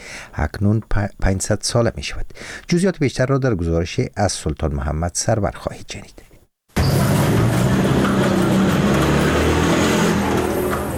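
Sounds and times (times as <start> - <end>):
speech: 0.4 - 6.3
dense loud city street traffic noise: 6.8 - 10.9
motorcycles rumbling along a busy city street: 6.8 - 10.9.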